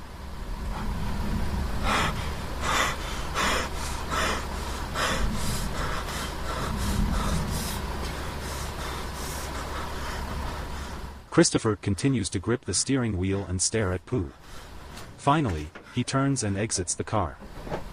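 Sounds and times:
steady low rumble: 0.0 - 11.3
injured man taking deep ragged breaths in a car after a crash: 0.6 - 11.3, 14.3 - 15.0
speech: 11.4 - 17.9.

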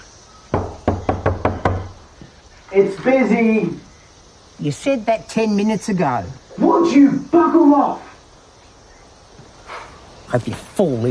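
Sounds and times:
knocking on a toilet door: 0.5 - 1.9
speech: 2.7 - 3.8, 4.6 - 8.0, 10.3 - 11.0.

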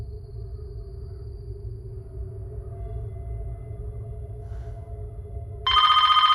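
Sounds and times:
quiet low hum: 0.0 - 6.3
landline telephone ringing with a trilling electric bell: 5.7 - 6.3.

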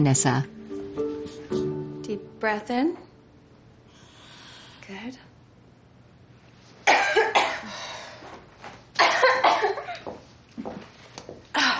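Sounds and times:
speech: 0.0 - 0.6, 2.4 - 3.1, 4.9 - 5.3
patient coughing in a clinic exam room: 6.9 - 7.8, 9.0 - 10.0.

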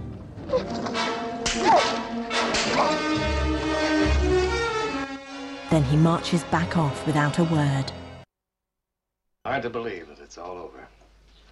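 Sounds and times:
sustained music: 0.0 - 8.3
man slapping a woman across the face: 1.4 - 2.9
speech: 5.7 - 8.0, 9.6 - 11.0.

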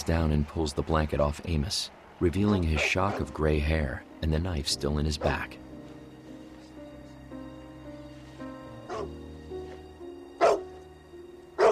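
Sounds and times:
speech: 0.0 - 5.6
dog barking: 8.9 - 9.1, 10.4 - 10.6, 11.6 - 11.7.

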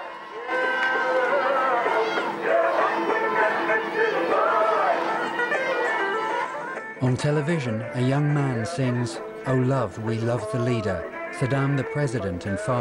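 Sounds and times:
large crowd running along ancient streets: 0.0 - 6.8
large crowd shouting praising and cheering outdoors in ancient streets: 0.0 - 12.7
speech: 7.0 - 12.7.

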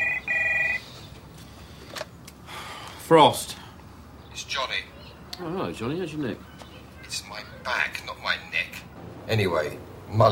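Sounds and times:
telephone ringing at home: 0.0 - 0.8
speech: 3.1 - 3.6, 4.4 - 6.6, 9.3 - 10.2.

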